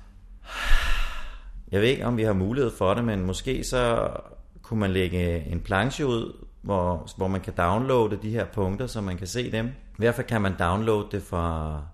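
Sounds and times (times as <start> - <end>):
deep inhalation drawn in close to the microphone: 0.4 - 1.6
speech: 1.7 - 11.9.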